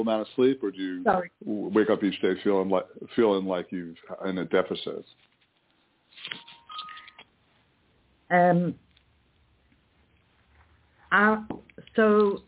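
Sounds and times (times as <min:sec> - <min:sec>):
speech: 0:00.0 - 0:05.3, 0:08.3 - 0:08.8, 0:11.1 - 0:12.4
quiet rustling: 0:04.3 - 0:07.8, 0:08.8 - 0:11.1
phone ringing with melodic electronic ringtone: 0:06.3 - 0:07.2.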